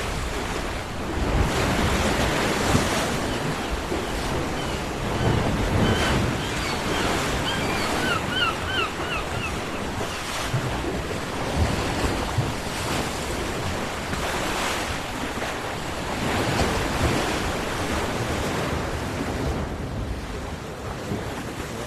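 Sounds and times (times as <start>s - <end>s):
gentle sea waves washing against the shore: 0.0s - 21.8s
wind across the microphone: 0.0s - 21.8s
faint bird calls: 3.1s - 10.5s.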